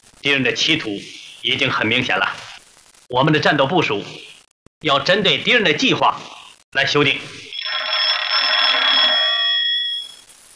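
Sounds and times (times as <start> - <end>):
speech: 0.2 - 2.5, 3.1 - 7.5
old-style telephone bell ringing: 7.5 - 10.2.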